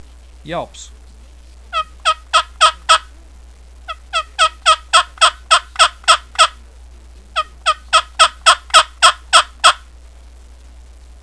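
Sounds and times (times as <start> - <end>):
turkey yelp call for turkey hunting: 1.7 - 3.1, 3.9 - 6.5, 7.4 - 9.8.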